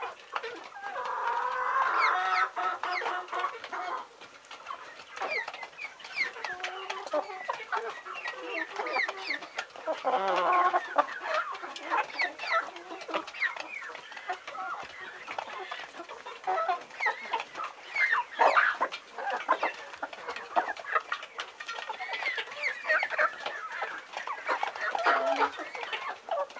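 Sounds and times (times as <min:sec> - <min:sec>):
flock of chickens clucking and squawking on a farm: 0:00.0 - 0:26.5.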